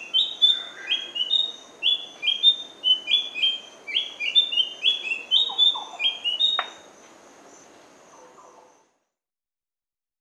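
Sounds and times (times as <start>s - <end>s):
large-billed scrubwren giving high sweet slightly descending chirps: 0.0s - 6.9s.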